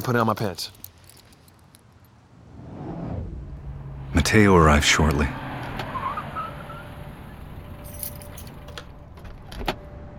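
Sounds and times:
speech: 0.0s - 0.8s, 4.2s - 5.4s
keys jangling: 0.6s - 1.9s, 7.8s - 8.8s
car engine rumbling outside a hospital emergency room: 0.9s - 10.1s.

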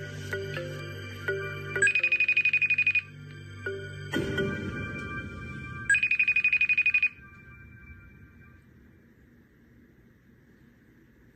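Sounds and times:
phone ringing during an unanswered call: 0.4s - 4.0s, 5.9s - 8.7s.

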